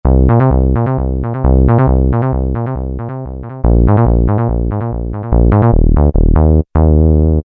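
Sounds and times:
synthesizer bass for dance music: 0.0 - 7.4.

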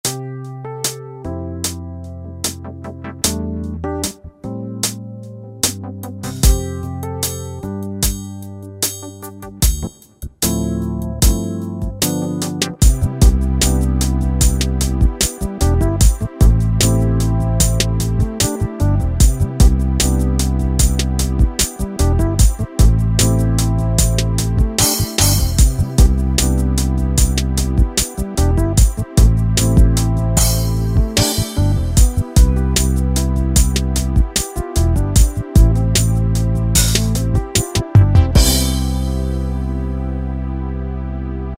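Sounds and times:
soulful keyboard style music: 0.0 - 41.5.

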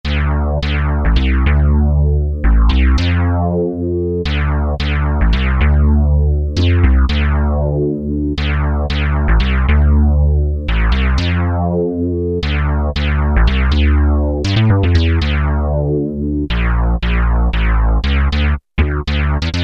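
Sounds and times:
Eurodance synth bass from an Alesis Z2: 0.0 - 19.6.

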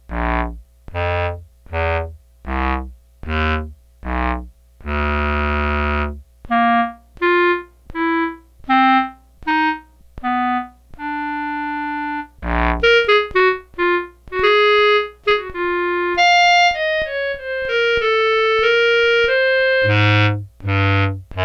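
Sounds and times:
bass clarinet: 0.0 - 21.4.

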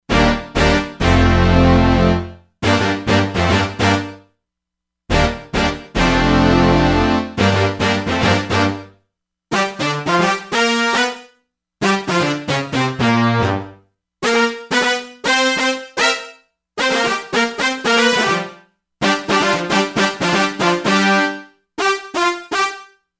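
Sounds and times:
staccato brass on synth: 0.1 - 4.2, 5.1 - 8.9, 9.5 - 22.9.

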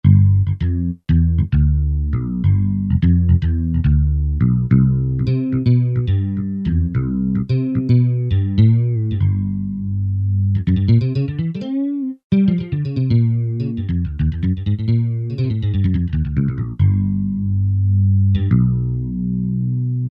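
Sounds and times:
Kurzweil K2000 synthesizer bass: 0.0 - 20.0.

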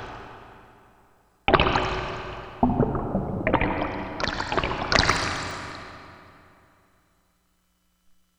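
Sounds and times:
water drop: 1.5 - 6.3.

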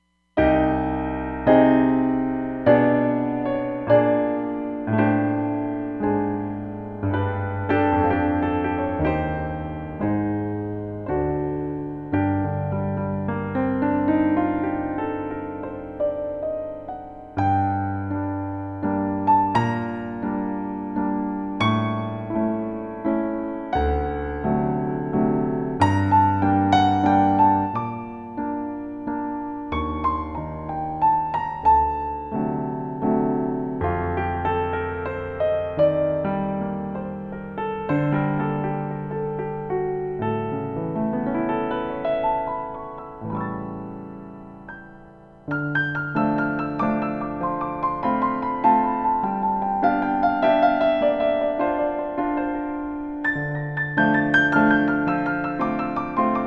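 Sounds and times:
Roland Fantom XR 88 concert piano: 0.0 - 56.4.

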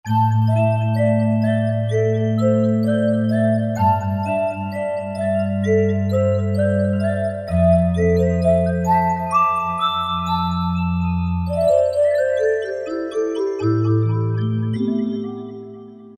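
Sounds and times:
Korg MSC-05S piano playing a nursery tune: 0.1 - 16.1.

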